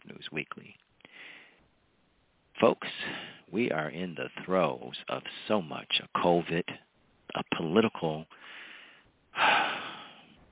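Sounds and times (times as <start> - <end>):
speech: 0.3 - 0.8, 2.6 - 8.6
speaker taking a sharp intake of breath: 1.0 - 1.6, 3.0 - 3.5, 8.3 - 10.4.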